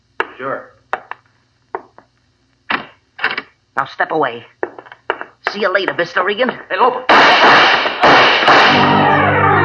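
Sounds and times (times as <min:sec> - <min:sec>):
speech: 0:00.4 - 0:00.8, 0:03.8 - 0:04.6, 0:05.5 - 0:09.4
gunshots fired up a spiral staircase: 0:07.1 - 0:09.0.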